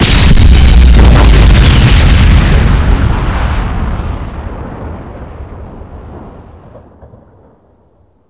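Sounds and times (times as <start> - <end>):
nuclear explosion: 0.0 - 8.2.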